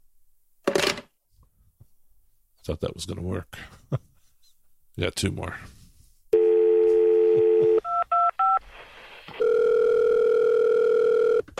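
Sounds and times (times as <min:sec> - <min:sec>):
speech: 0:02.6 - 0:04.1, 0:05.0 - 0:05.8
steady telephone dial tone: 0:06.4 - 0:08.6, 0:09.4 - 0:11.5.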